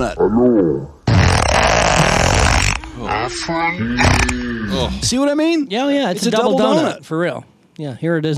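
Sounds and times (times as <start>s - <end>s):
speech: 0.0s - 1.0s, 3.2s - 8.3s
loud sustained fart: 1.0s - 2.9s, 3.8s - 4.4s.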